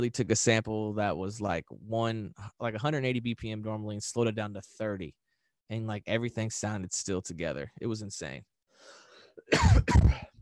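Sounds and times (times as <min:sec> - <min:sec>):
speech: 0:00.0 - 0:10.3
person coughing: 0:09.4 - 0:10.4.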